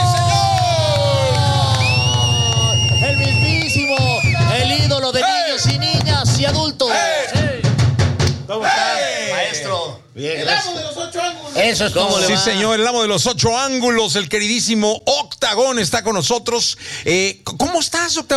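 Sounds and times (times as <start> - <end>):
people shouting over crowd: 0.0 - 2.8, 4.4 - 5.8, 6.8 - 7.6, 8.5 - 9.8
lively crowd applauding and cheering: 0.0 - 5.0
drums pounding steadily: 0.0 - 8.8
speech: 10.2 - 18.3.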